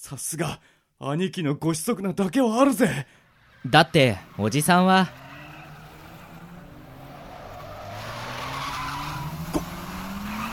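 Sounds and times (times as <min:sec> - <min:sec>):
speech: 0:00.0 - 0:05.2
car engine revving: 0:03.2 - 0:10.5
tires skidding and squealing: 0:03.2 - 0:10.5.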